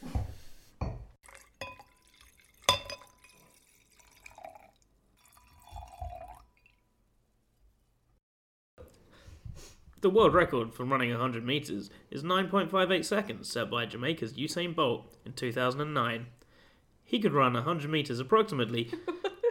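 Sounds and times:
wine glasses clinking together in a toast: 0.8 - 6.7
soft liquid sloshing and dripping: 1.2 - 6.8
speech: 10.0 - 16.4, 17.1 - 19.5.

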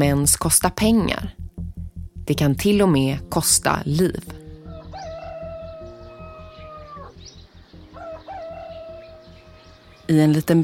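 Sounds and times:
speech: 0.0 - 1.4, 2.3 - 4.4, 10.1 - 10.6
low rhythmic thumping: 0.0 - 10.6
rooster crowing in a small village in northern Nepal: 4.7 - 7.2, 8.0 - 10.0.

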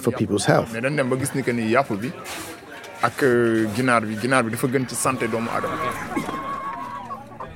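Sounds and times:
speech: 0.0 - 6.4
laughter: 0.0 - 7.5
chickens clucking: 3.8 - 7.5.

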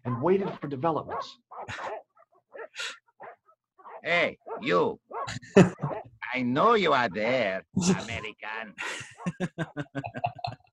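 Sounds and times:
dogs barking: 0.0 - 8.3
speech: 0.1 - 2.0, 4.0 - 10.2
laughter: 5.3 - 10.7.

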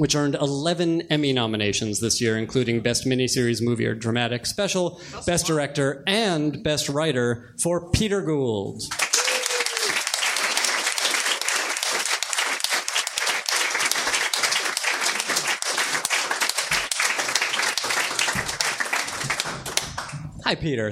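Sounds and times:
speech: 0.0 - 9.1, 20.5 - 20.9
people whooping: 8.9 - 11.0
large crowd applauding: 8.9 - 20.3.

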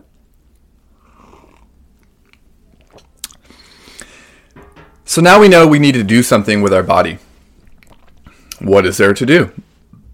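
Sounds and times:
person sipping a drink with slurping: 0.4 - 4.6, 7.3 - 8.6
speech: 5.1 - 7.3, 8.7 - 9.6.

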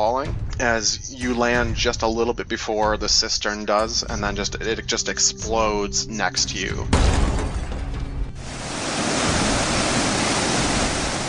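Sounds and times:
speech: 0.0 - 7.4
big wave of water rushing: 8.4 - 11.2.

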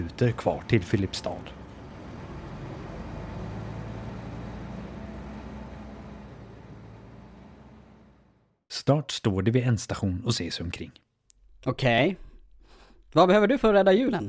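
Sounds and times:
speech: 0.0 - 1.6, 8.7 - 11.0, 11.6 - 12.3, 13.1 - 14.2
heavy bus engine rumbling as the bus pulls away: 0.0 - 8.6.

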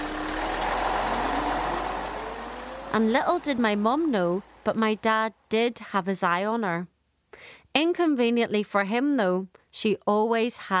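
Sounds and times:
school bus engine rumbling: 0.0 - 6.0
speech: 3.0 - 10.7.

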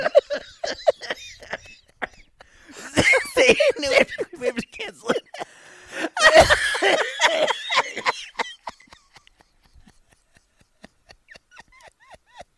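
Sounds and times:
laughter: 0.0 - 12.5
short wheezy gasps: 2.4 - 3.0, 5.4 - 6.2
harsh hacking coughing fit: 2.8 - 5.6, 6.2 - 8.1
speech: 3.4 - 4.2.

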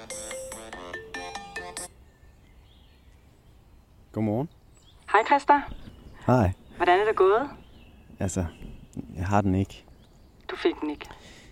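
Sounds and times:
phone ringtone with bright electronic melody: 0.0 - 2.0
speech: 4.2 - 4.6, 5.2 - 7.6, 8.2 - 9.9, 10.5 - 11.4.

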